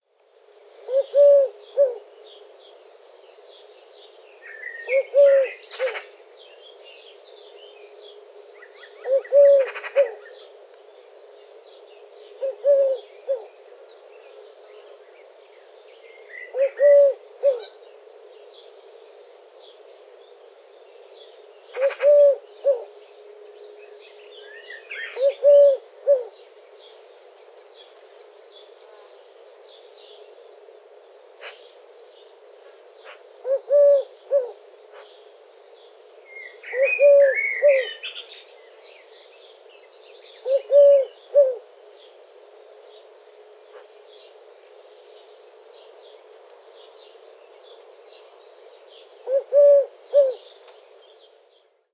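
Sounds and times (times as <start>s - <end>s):
collared dove: 0.5s - 6.1s, 7.4s - 20.5s, 21.2s - 38.3s, 39.3s - 51.6s.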